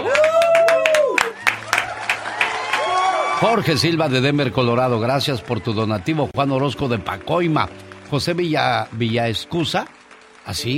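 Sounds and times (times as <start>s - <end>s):
whooping, cheering voices: 0.0s - 7.7s
many hands clapping in applause: 0.0s - 10.7s
speech: 3.4s - 10.7s.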